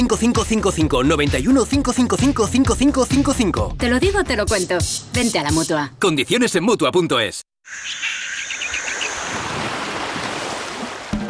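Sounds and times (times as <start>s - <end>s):
speech: 0.0s - 8.0s
birds chirping and calling: 7.7s - 10.2s
surf washing onto a Caribbean beach: 9.1s - 11.2s.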